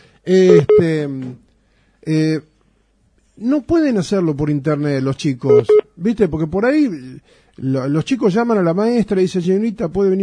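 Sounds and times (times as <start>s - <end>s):
speech: 0.2s - 1.4s, 2.0s - 2.5s, 3.4s - 10.2s
telephone ringing with a bright buzzy electronic tone: 0.5s - 0.9s, 5.5s - 5.8s.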